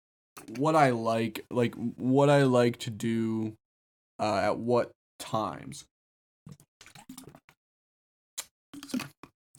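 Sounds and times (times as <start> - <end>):
speech: 0.5 - 3.6, 4.2 - 5.9
sipping and gulping water: 6.5 - 7.6, 8.4 - 9.5.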